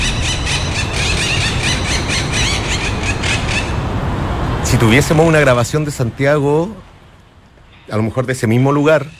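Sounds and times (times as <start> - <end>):
flock of monk parakeets squawking in Santiago: 0.0 - 3.9
speech: 4.8 - 6.9, 7.9 - 9.1.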